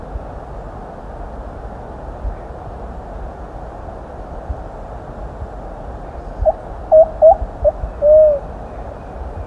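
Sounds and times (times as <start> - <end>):
constant hiss: 0.0 - 9.4
plumbeous pigeon song: 6.9 - 8.4.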